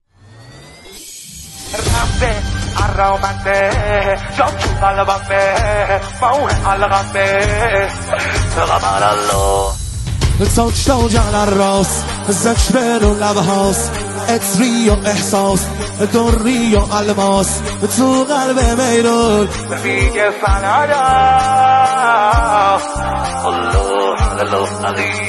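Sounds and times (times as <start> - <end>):
maddahi religious eulogy singing: 1.7 - 25.2.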